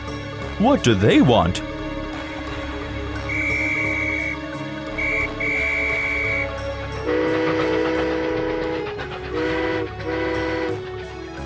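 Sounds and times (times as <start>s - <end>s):
train rumbling along the tracks: 0.0s - 11.4s
speech: 0.6s - 1.7s
whistle-like tones: 3.2s - 6.6s.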